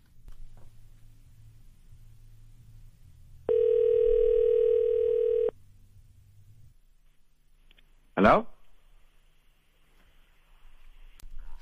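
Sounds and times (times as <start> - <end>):
low rumble: 0.1 - 8.1
loud steady electronic ringing tone of a studio phone line: 3.5 - 5.5
speech: 8.3 - 8.5.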